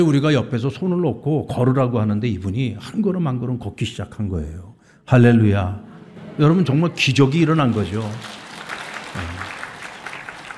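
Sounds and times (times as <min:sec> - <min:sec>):
speech: 0:00.0 - 0:08.4, 0:09.2 - 0:09.5
church congregation applause during a service: 0:06.2 - 0:10.5.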